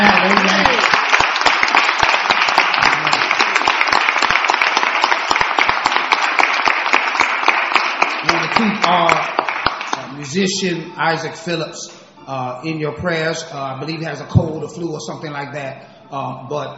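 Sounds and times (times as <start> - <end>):
roomful of people applauding with hand clapping: 0.0 - 10.4
speech: 10.3 - 16.7.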